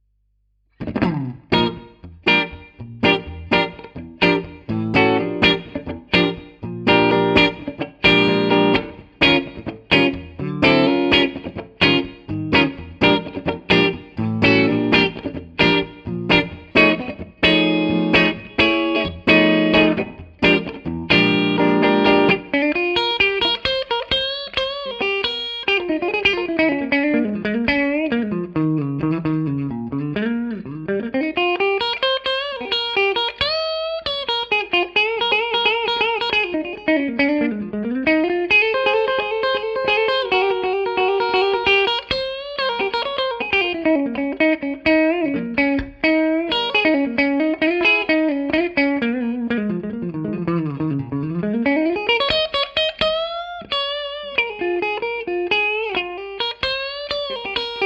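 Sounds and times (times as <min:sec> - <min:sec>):
clean electric guitar on neck and bridge humbucker pickups: 0:00.7 - 0:57.8.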